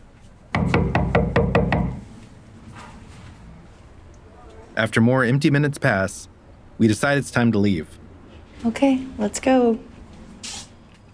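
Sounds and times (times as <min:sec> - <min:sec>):
firm knocking on a front door at an apartment housing complex: 0:00.6 - 0:02.0
speech: 0:04.8 - 0:08.0, 0:08.6 - 0:10.6.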